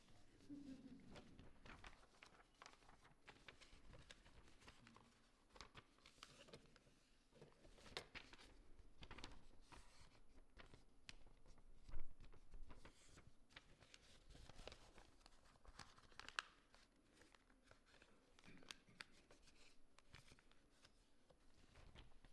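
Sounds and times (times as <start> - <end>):
paper being folded: 0.4 - 22.3.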